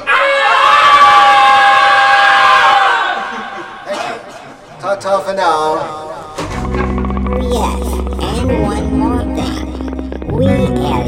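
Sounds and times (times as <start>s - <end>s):
small group of people screaming together: 0.0s - 3.6s
speech: 5.0s - 6.1s, 7.5s - 11.0s.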